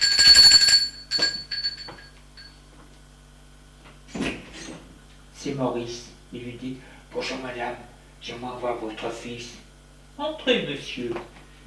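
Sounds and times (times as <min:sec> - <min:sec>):
doorbell ringing at a front door: 0:00.0 - 0:02.6
speech: 0:05.4 - 0:09.6, 0:10.2 - 0:11.6.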